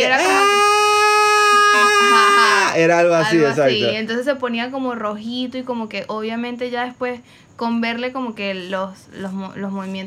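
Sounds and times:
voice imitating a baby's straining cry: 0.0 - 2.8
speech: 2.8 - 10.0.

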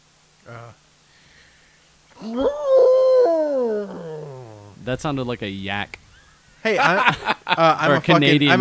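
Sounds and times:
speech: 0.5 - 0.9, 2.2 - 2.8, 4.8 - 6.0, 6.6 - 8.6
person imitating an elephant with grunt and trumpet-like cry: 2.2 - 4.9
laughter: 6.6 - 8.6.

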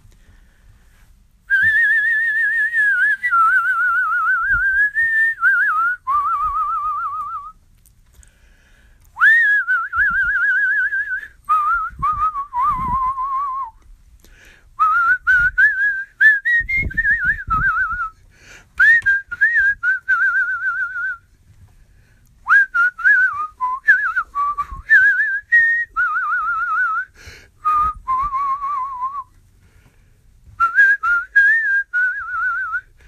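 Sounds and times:
breaths: 0.0 - 1.3, 8.1 - 9.2, 14.2 - 14.8, 18.2 - 18.8, 21.4 - 22.4, 27.1 - 27.6, 29.4 - 30.5, 32.8 - 33.0
person whistling a slow song melody: 1.5 - 7.6, 9.2 - 13.8, 14.8 - 18.2, 18.8 - 21.3, 22.5 - 29.3, 30.6 - 32.9.

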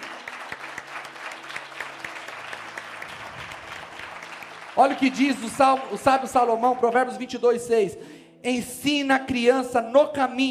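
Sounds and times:
audience applause: 0.0 - 6.7
speech: 4.8 - 10.4.

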